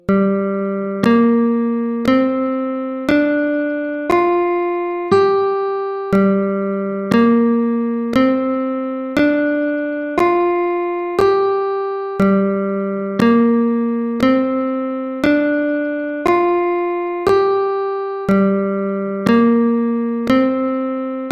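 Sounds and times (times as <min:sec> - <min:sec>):
G pentatonic minor scale: 0:00.0 - 0:21.3.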